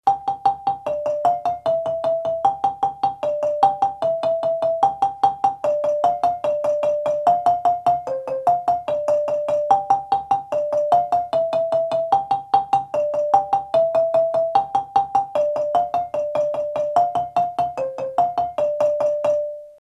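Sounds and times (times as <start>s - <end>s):
marimba lead rolling in the middle register: 0.1s - 19.8s.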